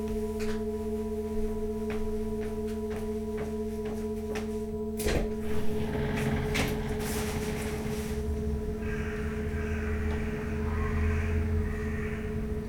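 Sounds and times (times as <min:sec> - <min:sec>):
outdoor ambience: 0:00.0 - 0:12.6
steady electrical hum: 0:00.1 - 0:12.6
door opening: 0:05.0 - 0:10.6.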